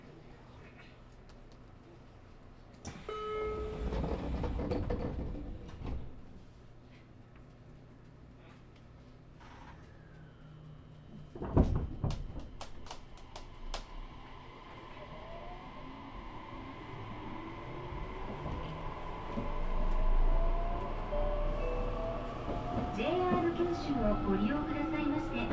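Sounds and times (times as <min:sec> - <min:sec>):
train in motion rumbling heard from inside a carriage: 0:02.9 - 0:06.8, 0:09.8 - 0:25.5
speech: 0:23.7 - 0:24.6.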